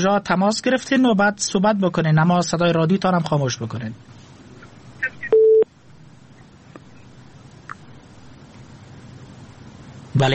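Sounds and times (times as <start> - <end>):
speech: 0.0 - 4.2, 10.2 - 10.3
telephone busy tone after a cut-off call: 5.3 - 5.7.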